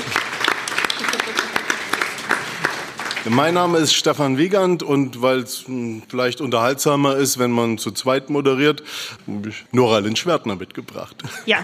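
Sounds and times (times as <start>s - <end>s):
audience applauding: 0.0s - 4.0s
speech: 3.2s - 11.6s.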